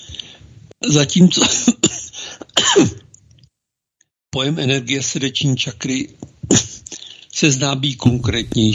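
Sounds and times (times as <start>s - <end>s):
speech: 0.8s - 1.8s, 2.6s - 3.0s, 4.4s - 6.7s, 7.4s - 8.7s
person coughing: 1.6s - 3.1s.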